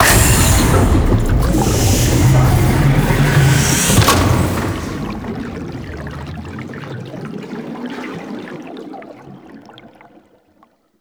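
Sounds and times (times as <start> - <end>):
injection machine ambience: 0.0 - 6.6.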